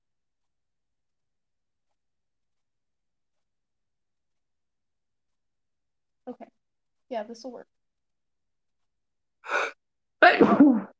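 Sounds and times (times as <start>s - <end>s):
speech: 6.3s - 7.8s
person sneezing: 9.5s - 10.9s.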